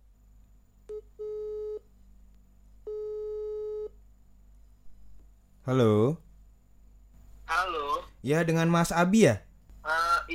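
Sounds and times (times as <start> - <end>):
faint hum: 0.0 - 10.3
telephone ringback tone while a call is placed: 2.9 - 3.9
speech: 5.7 - 6.2, 8.2 - 9.4.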